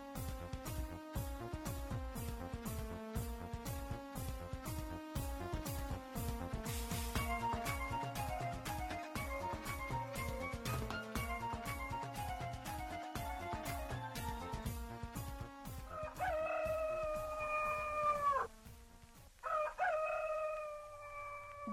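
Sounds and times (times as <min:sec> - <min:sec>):
rhythmic percussive music: 0:00.0 - 0:19.4
rooster crowing: 0:15.9 - 0:18.5, 0:19.4 - 0:21.7.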